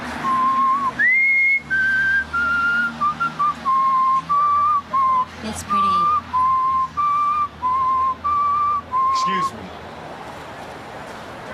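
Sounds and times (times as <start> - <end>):
man whistling a slow lilting melody: 0.2 - 5.4, 6.0 - 9.6.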